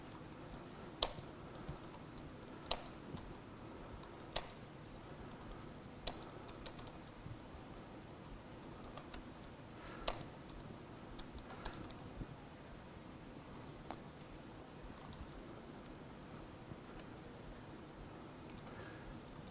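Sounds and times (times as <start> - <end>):
computer keyboard typing clicks: 0.0 - 3.3, 4.0 - 4.6, 5.3 - 7.2, 8.6 - 12.1, 15.0 - 15.9, 18.4 - 19.4
low steady hiss: 0.0 - 19.4.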